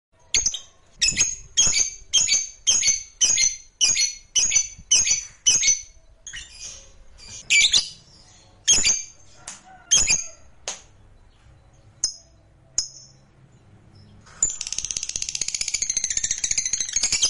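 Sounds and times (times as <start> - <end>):
lovebird chirps: 0.2 - 17.2.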